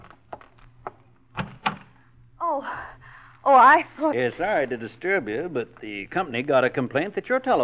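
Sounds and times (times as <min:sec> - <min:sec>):
wooden front door thunks as it opens: 0:01.3 - 0:01.9
speech: 0:03.5 - 0:07.6.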